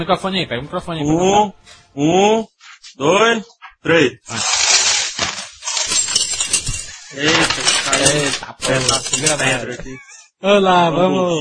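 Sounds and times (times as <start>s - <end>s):
speech: 0.0s - 4.6s, 7.1s - 11.3s
many coins pouring into a jukebox coin slot: 4.4s - 9.6s.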